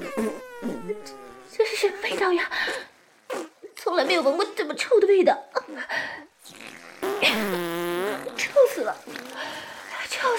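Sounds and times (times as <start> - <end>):
cartoonish fart noises: 0.0 - 2.4, 3.2 - 4.4, 6.4 - 9.4
speech: 1.8 - 2.8, 4.1 - 6.2.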